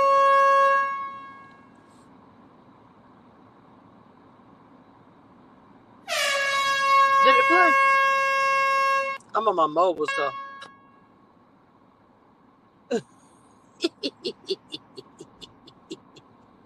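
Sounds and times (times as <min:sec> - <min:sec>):
loud brassy air horn blaring: 0:00.0 - 0:01.8, 0:06.1 - 0:09.2, 0:10.1 - 0:11.1
speech: 0:09.4 - 0:10.4
laughter: 0:13.8 - 0:16.2.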